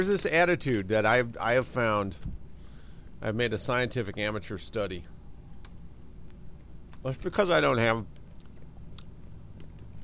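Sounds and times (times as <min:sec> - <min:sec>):
speech: 0:00.0 - 0:02.4, 0:03.2 - 0:05.2, 0:07.0 - 0:08.2
low steady rumble: 0:00.0 - 0:10.0
faint crackly clicks: 0:05.5 - 0:07.2, 0:08.0 - 0:10.0
person munching on raisins: 0:08.3 - 0:10.0.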